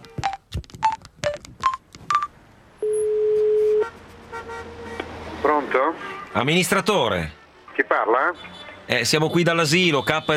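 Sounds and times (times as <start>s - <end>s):
touch-tone telephone dialling beeps: 0.2s - 3.8s
long steady telephone tone: 2.8s - 3.9s
speech: 6.4s - 10.3s.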